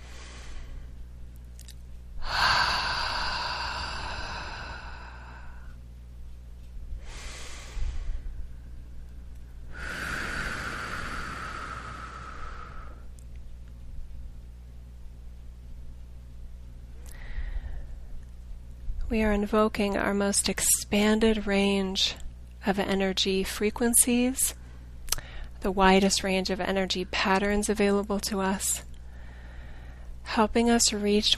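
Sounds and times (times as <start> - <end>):
deep breaths in through the nose and out through the mouth: 0.0 - 1.1, 2.2 - 5.8, 7.0 - 8.9, 9.6 - 13.1, 17.0 - 18.2, 29.0 - 30.2
speech: 19.1 - 24.6, 25.6 - 28.9, 30.4 - 31.3.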